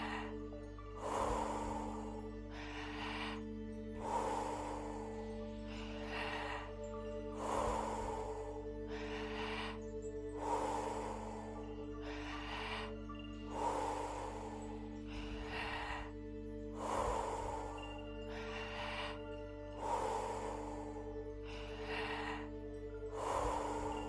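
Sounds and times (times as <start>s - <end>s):
forceful rhythmic breathing in and out during a breathing exercise: 0.0s - 24.0s
low sustained musical drone: 0.0s - 24.0s.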